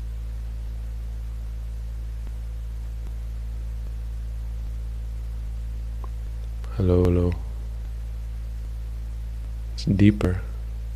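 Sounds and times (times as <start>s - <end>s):
low electrical hum: 0.0s - 10.9s
static hiss: 0.0s - 10.9s
faint ticks: 6.0s - 8.0s
speech: 6.8s - 7.5s, 9.8s - 10.5s.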